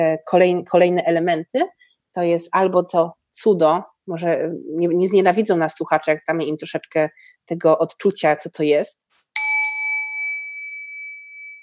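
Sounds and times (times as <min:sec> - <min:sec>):
speech: 0:00.0 - 0:09.1
workshop facilitator's bright metallic bell struck: 0:09.4 - 0:11.6.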